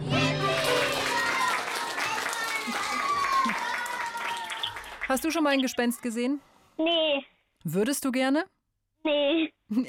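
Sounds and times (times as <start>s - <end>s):
applause: 0.1s - 5.8s
cheering: 0.3s - 5.1s
speech: 5.1s - 9.8s.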